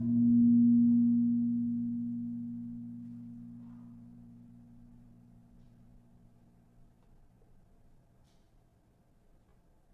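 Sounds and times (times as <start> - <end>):
tuned gamelan gong: 0.0 - 5.5.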